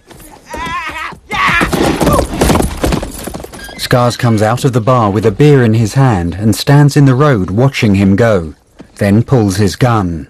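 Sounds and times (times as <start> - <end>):
horse ridden away with rapid hoofbeats: 0.0 - 6.0
horse whinnying outside a bar: 0.1 - 4.3
speech: 3.9 - 10.2.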